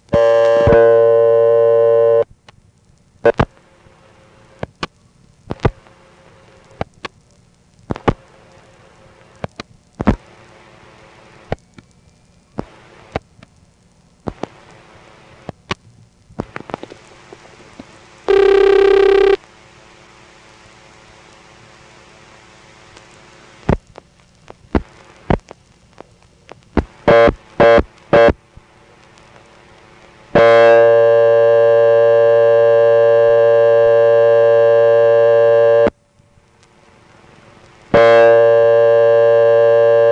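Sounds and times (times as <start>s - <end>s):
faint hum: 0.0s - 40.0s
brief loud telephone tone burst: 0.1s - 2.3s, 18.3s - 19.4s, 27.1s - 28.4s, 30.4s - 36.0s, 37.9s - 40.0s
telephone dial tone: 0.2s - 2.3s, 18.3s - 19.4s, 30.4s - 35.9s, 38.0s - 40.0s.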